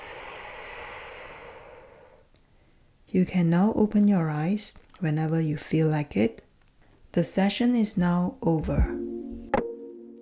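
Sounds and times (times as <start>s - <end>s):
slow exhale of breath during a guided breathing exercise: 0.0s - 2.9s
speech: 3.1s - 6.4s, 7.1s - 9.1s.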